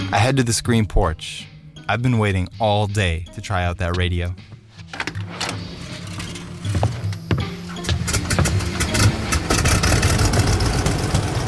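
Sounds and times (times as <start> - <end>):
speech: 0.1 - 4.5
car engine starting with a brief whine and idling: 4.9 - 11.4
clicks and rattles: 4.9 - 11.4.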